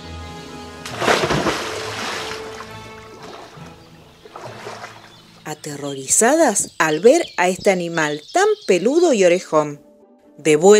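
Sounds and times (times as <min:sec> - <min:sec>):
marsh frogs splashing into pond water: 0:00.9 - 0:05.5
speech: 0:05.5 - 0:09.8, 0:10.4 - 0:10.7.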